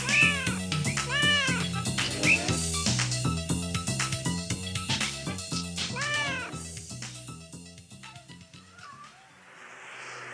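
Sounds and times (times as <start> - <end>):
cat meowing: 0.0 - 2.6, 5.8 - 6.6
bouncy rhythmic musical backing: 0.0 - 9.2.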